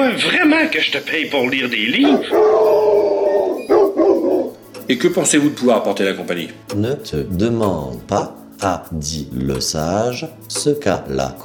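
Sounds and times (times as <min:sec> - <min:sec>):
speech: 0:00.2 - 0:03.2, 0:04.9 - 0:11.4
dog howling: 0:02.0 - 0:04.6.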